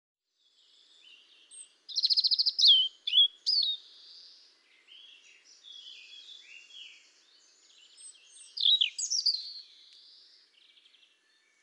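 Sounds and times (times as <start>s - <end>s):
European robin Erithacus rubecula singing: 0.3s - 11.6s.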